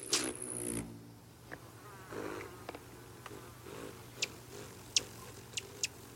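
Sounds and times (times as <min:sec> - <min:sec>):
rufous hummingbird deep wing buzz: 0:00.0 - 0:06.1
sharp high chip-like ticks: 0:04.2 - 0:06.1.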